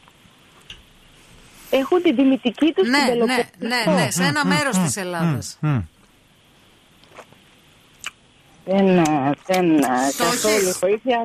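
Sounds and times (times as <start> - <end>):
speech: 1.7 - 6.0, 8.7 - 11.2
slurping: 9.8 - 10.8.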